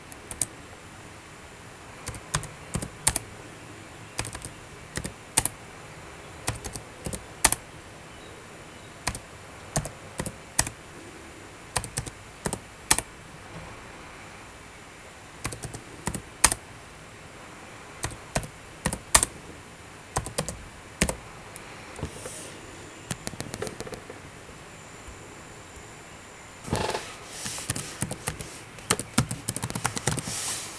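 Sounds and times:
keyboard keys clicking: 0.0s - 0.6s, 2.0s - 3.3s, 4.2s - 5.6s, 6.4s - 7.7s, 9.0s - 10.9s, 11.7s - 13.7s, 15.4s - 16.7s, 18.0s - 19.4s, 20.1s - 25.2s, 26.6s - 30.7s.

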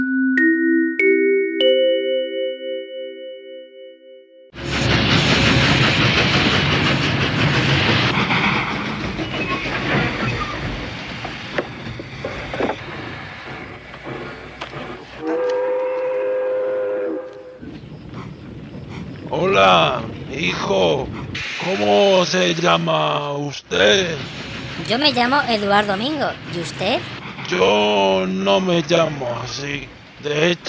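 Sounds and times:
three-note ascending station chime: 0.0s - 4.5s
train departing from a station rumbling and rattling: 4.6s - 30.6s
tonal train whistle: 15.1s - 17.7s
speech: 22.4s - 30.6s.

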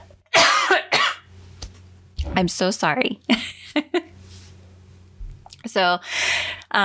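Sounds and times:
loud coughs: 0.3s - 1.3s
speech: 2.4s - 3.9s, 5.8s - 6.8s.

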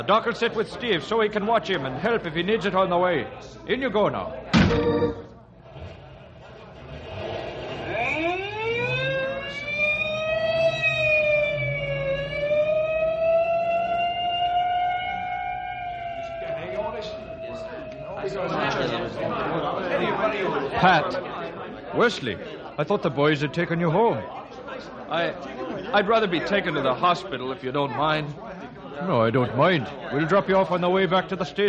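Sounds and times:
speech: 0.0s - 5.2s, 22.1s - 24.4s, 25.1s - 31.6s
commotion: 4.4s - 20.4s
indistinct voices: 4.4s - 21.2s
ambulance siren wailing: 7.7s - 19.3s.

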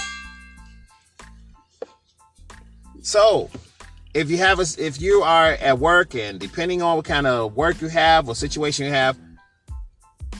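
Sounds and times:
bell struck with bright metallic dings: 0.0s - 0.9s
speech: 3.0s - 3.6s, 4.2s - 9.2s.

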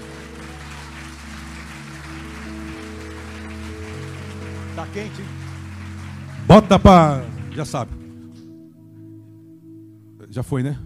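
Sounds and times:
audience clapping during a church service: 0.0s - 8.6s
sustained keyboard chords holding low notes: 0.0s - 10.8s
speech: 4.8s - 5.4s, 6.5s - 8.0s, 10.3s - 10.8s.

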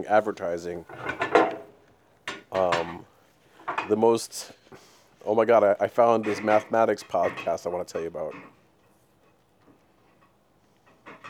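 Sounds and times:
speech: 0.0s - 1.2s, 2.6s - 3.1s, 3.9s - 8.5s
dishes and cutlery clattering while washing up: 0.9s - 3.0s, 3.6s - 4.0s, 6.2s - 8.6s.

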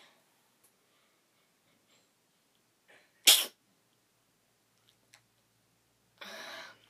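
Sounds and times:
person sneezing: 3.2s - 3.6s.

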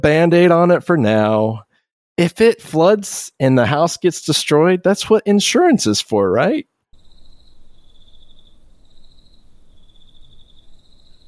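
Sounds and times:
speech: 0.0s - 6.7s
crickets chirping: 7.0s - 11.2s.

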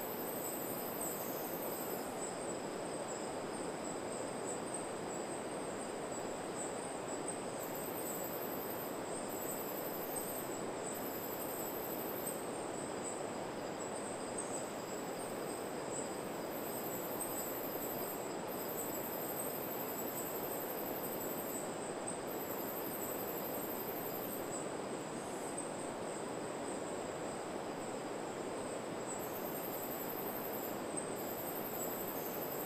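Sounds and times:
thin piercing insect-like whine in a forest at night: 0.0s - 4.6s, 7.5s - 24.6s, 29.0s - 32.6s
dense forest night ambience: 0.0s - 32.6s.

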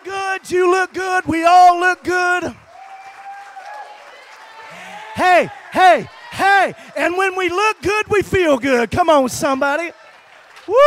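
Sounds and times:
audience applauding: 0.0s - 10.8s
speech: 0.4s - 2.6s, 5.2s - 10.0s, 10.7s - 10.8s
audience members whooping: 2.1s - 7.5s, 9.9s - 10.8s.

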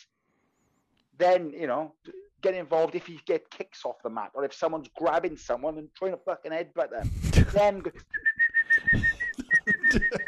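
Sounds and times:
speech: 1.2s - 8.2s
laughter: 7.0s - 10.2s
person whistling a sustained tone like a referee's whistle: 8.1s - 10.2s.

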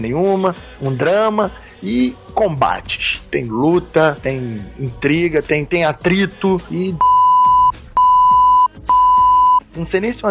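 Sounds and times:
speech: 0.0s - 7.2s, 9.8s - 10.2s
long steady censor beeps covering a spoiler: 7.0s - 9.6s.

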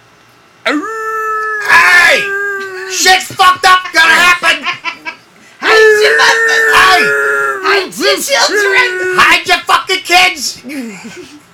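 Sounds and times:
person imitating a wolf howl: 0.7s - 3.1s, 5.6s - 9.2s
laughter: 2.2s - 5.2s
speech: 3.0s - 3.8s, 6.0s - 11.4s.

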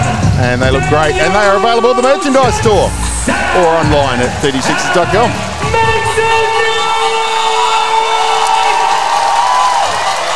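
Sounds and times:
large arena crowd cheering before a basketball game: 0.0s - 10.3s
speech: 0.4s - 6.0s.

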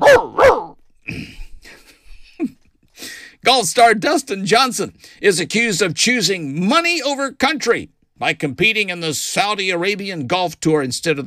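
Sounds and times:
dog barking: 0.0s - 0.8s
speech: 3.5s - 11.2s.

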